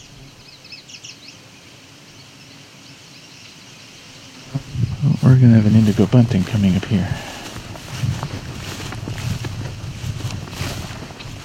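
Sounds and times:
common yellowthroat singing by a swampy area of cattails: 0.0 - 5.8
outdoor noise: 0.0 - 11.4
speech: 4.6 - 7.3.

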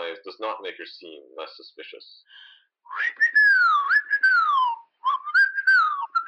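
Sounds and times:
speech: 0.2 - 3.5
woman whistling a wandering melody in a maintenance corridor: 2.9 - 6.2.

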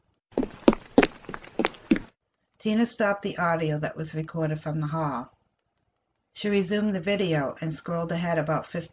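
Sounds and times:
small child running footsteps: 0.3 - 2.2
speech: 2.6 - 5.4, 6.4 - 8.9.

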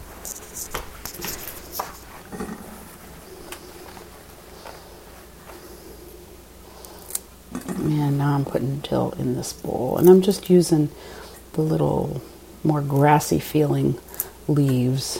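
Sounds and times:
paper towel crinkling and patting as fresh herbs are blotted dry: 0.0 - 6.0
speech: 8.3 - 15.1.

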